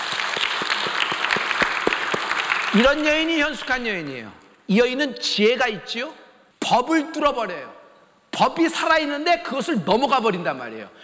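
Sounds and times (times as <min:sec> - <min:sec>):
church congregation clapping in a steady rhythmic beat: 0:00.0 - 0:04.6
speech: 0:02.7 - 0:07.8, 0:08.4 - 0:11.0.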